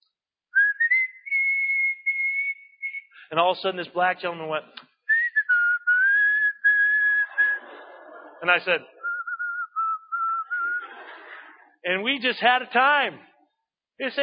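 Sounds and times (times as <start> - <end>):
person whistling a slow hymn tune: 0.6 - 3.2, 5.1 - 7.6, 9.0 - 10.8
speech: 3.3 - 4.9, 8.4 - 8.9, 11.9 - 13.3, 14.0 - 14.2
laughter: 7.0 - 9.2, 10.4 - 11.8.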